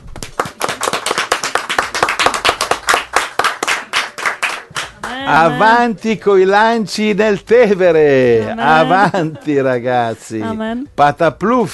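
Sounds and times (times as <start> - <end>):
applause from a group, many hands clapping: 0.1 - 5.5
speech: 5.2 - 11.7
laughter: 8.2 - 10.6.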